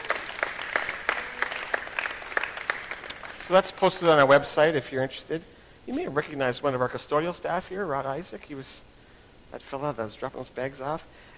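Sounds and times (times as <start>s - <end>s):
audience applauding young people: 0.0s - 4.2s
speech: 3.5s - 8.9s, 9.5s - 11.3s.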